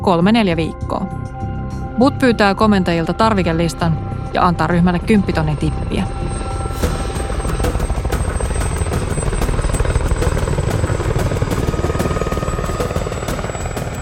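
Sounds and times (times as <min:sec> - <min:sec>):
speech: 0:00.0 - 0:06.4
landing helicopters rotor chop and engine roar: 0:05.8 - 0:14.0.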